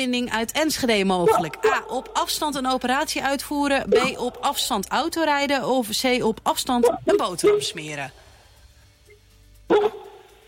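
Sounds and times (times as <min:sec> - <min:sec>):
speech: 0:00.0 - 0:08.2, 0:09.7 - 0:10.0
dog barking: 0:01.2 - 0:02.1, 0:06.8 - 0:07.8, 0:09.7 - 0:10.3.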